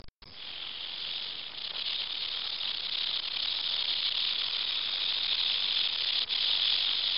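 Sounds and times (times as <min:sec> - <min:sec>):
rattlesnake rattle: 0:00.2 - 0:07.1.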